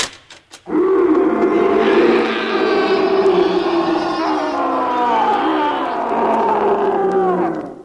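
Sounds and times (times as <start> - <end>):
tiger roaring: 0.7 - 7.8.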